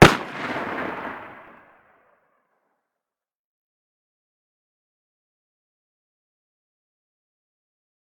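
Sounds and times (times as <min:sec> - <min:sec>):
distant deagle muzzle blast: 0:00.0 - 0:01.7.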